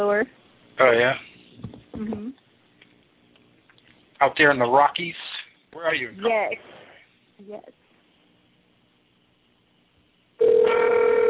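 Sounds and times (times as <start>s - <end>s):
speech: 0.0s - 2.4s, 4.2s - 6.8s, 7.4s - 7.8s
telephone ringing loudly: 10.4s - 11.2s.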